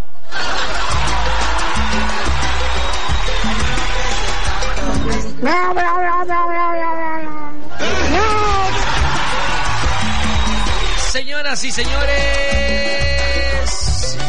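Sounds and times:
laughter: 0.2s - 5.3s, 7.6s - 11.1s
loud busy music with a steady beat: 0.2s - 6.0s, 7.8s - 14.2s
speech: 5.4s - 6.8s, 11.4s - 13.1s
cat meowing: 5.4s - 7.6s.

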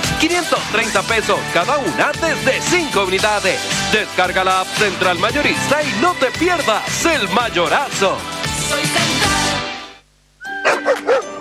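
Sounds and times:
speech: 0.2s - 9.0s
dogs yelping and whimpering: 10.5s - 11.3s
several dogs barking excitedly: 10.6s - 11.3s.

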